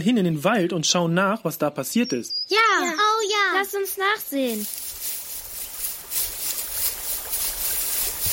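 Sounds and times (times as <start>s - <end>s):
speech: 0.0s - 4.8s
babbling forest stream: 2.0s - 8.3s.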